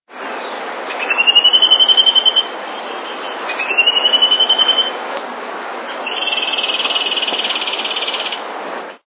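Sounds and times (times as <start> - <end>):
long-billed gnatwren singing: 0.4 - 5.0, 5.8 - 8.4.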